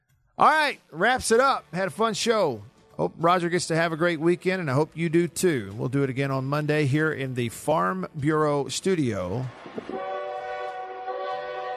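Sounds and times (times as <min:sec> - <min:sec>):
speech: 0:00.4 - 0:09.7
low rumble of rail movement: 0:09.3 - 0:11.7
train horn blaring a sustained chord: 0:09.9 - 0:11.7.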